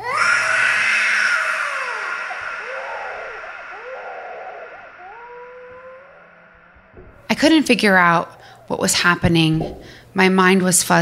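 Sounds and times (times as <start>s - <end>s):
person screaming: 0.0s - 7.0s
speech: 7.4s - 11.0s.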